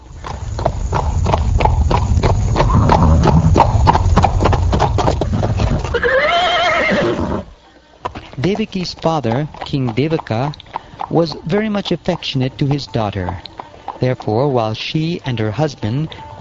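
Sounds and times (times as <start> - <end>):
low rumbling background: 0.0 - 6.0
hoofbeats of horses drawing a chariot: 0.0 - 16.3
horse whinnying: 2.5 - 7.6
speech: 8.5 - 16.2.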